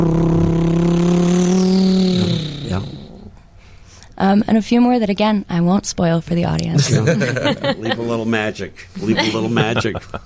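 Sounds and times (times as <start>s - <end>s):
car engine droning: 0.0s - 3.3s
speech: 4.3s - 10.2s
laughter: 6.8s - 8.2s, 9.0s - 10.2s.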